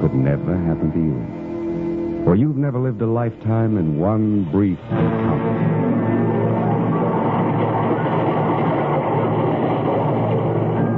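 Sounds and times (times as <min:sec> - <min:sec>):
speech: 0:00.2 - 0:05.7
train passing through a railway station: 0:04.9 - 0:10.9.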